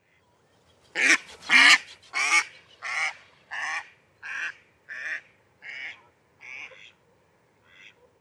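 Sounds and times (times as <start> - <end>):
mallard Anas platyrhynchos: 1.0 - 7.0, 7.6 - 8.1.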